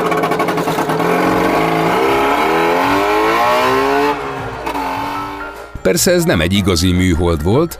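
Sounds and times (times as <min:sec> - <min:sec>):
Trabant small plastic-bodied car engine revving: 0:00.0 - 0:05.8
speech: 0:05.9 - 0:07.7.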